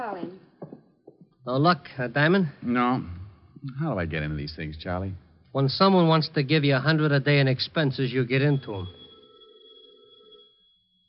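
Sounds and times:
speech: 0:00.0 - 0:00.5, 0:01.5 - 0:09.0
telephone bell ringing: 0:07.8 - 0:11.0.

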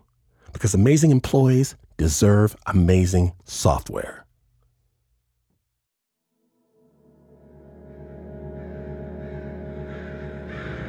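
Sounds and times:
speech: 0:00.6 - 0:04.2
large flock of crows cawing: 0:09.7 - 0:10.8.

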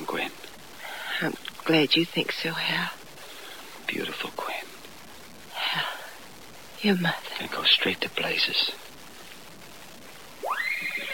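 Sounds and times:
faint hiss: 0:00.0 - 0:11.1
speech: 0:01.2 - 0:03.0, 0:03.9 - 0:04.6, 0:06.8 - 0:08.8
horse whinnying: 0:10.4 - 0:11.1.

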